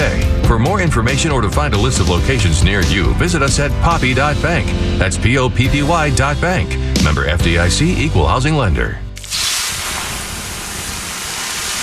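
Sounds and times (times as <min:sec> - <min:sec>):
speech: 0:00.5 - 0:09.0
water sizzling on hot sauna rocks: 0:09.2 - 0:11.8.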